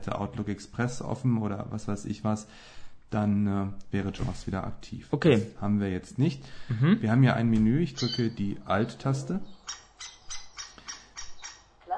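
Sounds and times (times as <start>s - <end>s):
speech: 0.1s - 9.8s
short chirpy bird calls of a computer nature sound scheme: 8.0s - 8.4s, 9.4s - 11.8s.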